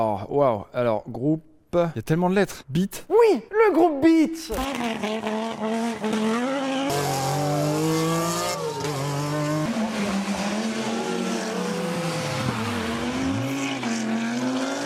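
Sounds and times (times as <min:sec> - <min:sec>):
speech: 0:00.0 - 0:07.2
Group B rally car engine roaring through gear changes: 0:04.5 - 0:14.8.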